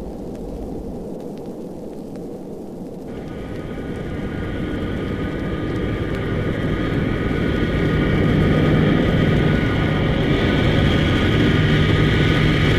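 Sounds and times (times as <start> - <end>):
airplane engine drone from an aircraft landing and approaching the runway: 2.9 - 12.7.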